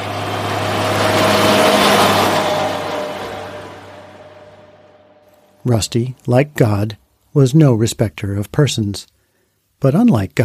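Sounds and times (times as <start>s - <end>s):
logging truck passing in front of a farmhouse: 0.0s - 5.6s
steady low drone: 0.0s - 5.9s
speech: 5.7s - 9.1s, 9.8s - 10.4s.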